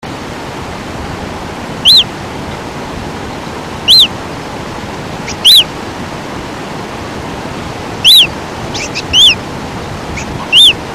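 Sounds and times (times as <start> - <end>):
fiofio bird calling: 1.8 - 2.1, 3.8 - 4.2, 5.2 - 5.7, 8.0 - 9.4, 10.1 - 10.9.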